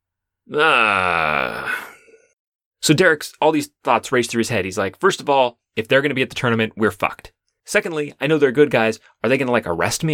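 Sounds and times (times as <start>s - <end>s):
speech: 0.5s - 1.5s, 2.9s - 10.1s
person imitating a groan of pain and recognition: 0.5s - 2.3s.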